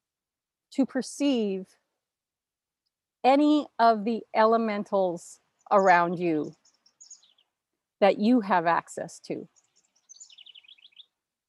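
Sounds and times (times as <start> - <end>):
speech: 0.8 - 1.8, 3.2 - 6.6, 8.0 - 9.6
bird chirping outside: 4.4 - 7.6, 8.2 - 11.2.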